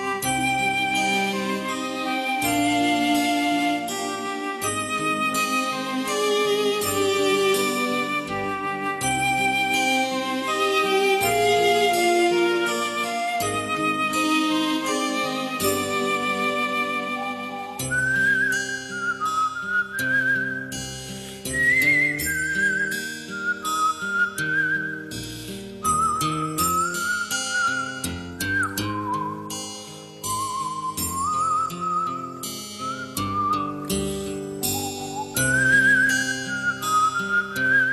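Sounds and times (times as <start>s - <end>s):
full instrumental backing track: 0.0s - 18.9s, 32.6s - 36.9s
person whistling a melody of a classic song: 0.0s - 37.9s.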